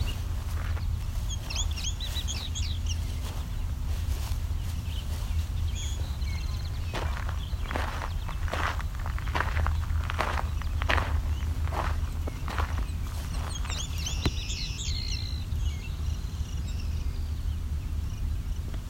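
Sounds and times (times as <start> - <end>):
crunching footsteps: 0.0 - 14.4
Savannah sparrows giving high thin chirping calls: 0.0 - 18.8
steady low outdoor rumble: 0.0 - 18.8.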